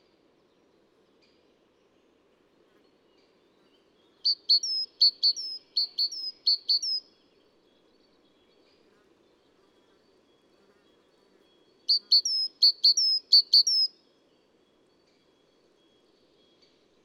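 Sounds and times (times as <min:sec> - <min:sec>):
adult male great tit singing a three-note phrase: 0:04.2 - 0:07.0, 0:11.5 - 0:13.9.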